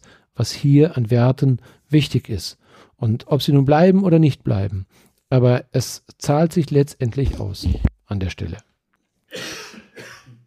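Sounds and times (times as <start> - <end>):
speech: 0.4 - 8.7, 9.3 - 10.1
harsh coughs: 9.3 - 10.4.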